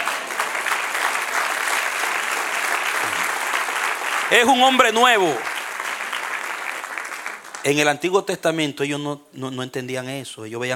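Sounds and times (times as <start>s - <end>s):
audience applauding during a sermon: 0.0s - 7.9s
speech: 4.3s - 5.5s, 7.6s - 10.7s.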